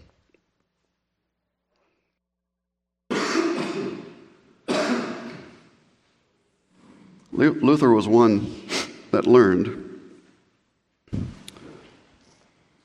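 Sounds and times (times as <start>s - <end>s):
person coughing: 3.1s - 5.6s
speech: 7.4s - 9.8s.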